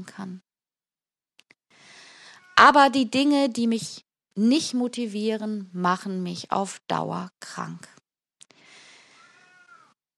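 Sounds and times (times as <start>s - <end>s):
speech: 0.0s - 0.5s, 2.6s - 8.0s
cat meowing: 2.2s - 2.8s, 9.2s - 10.0s.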